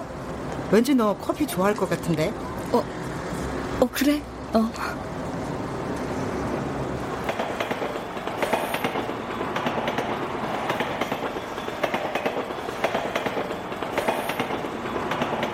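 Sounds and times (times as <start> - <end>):
subway train rattling past an elevated station: 0.0 - 15.5
speech: 0.7 - 3.0, 3.8 - 5.2
rhythmic metallic clacks from subway train wheels: 7.1 - 15.5.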